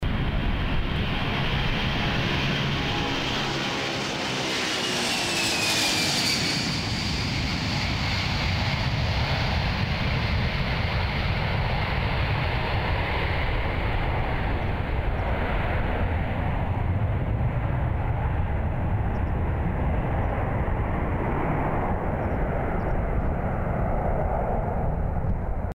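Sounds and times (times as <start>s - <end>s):
aircraft takeoff in Sofia: 0.0s - 25.7s.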